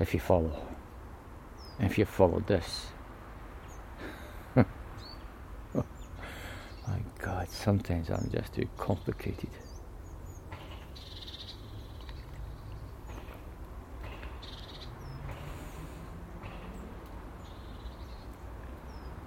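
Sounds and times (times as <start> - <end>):
speech: 0.0 - 0.7, 1.8 - 3.0, 4.6 - 4.8, 5.7 - 5.9, 6.9 - 9.7
small birds chirping in trees: 0.0 - 19.2
steady low outdoor rumble: 0.0 - 19.2.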